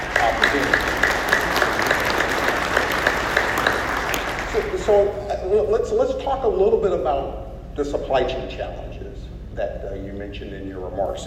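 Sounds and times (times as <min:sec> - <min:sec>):
crowd applauding: 0:00.0 - 0:05.1
speech: 0:04.9 - 0:11.2.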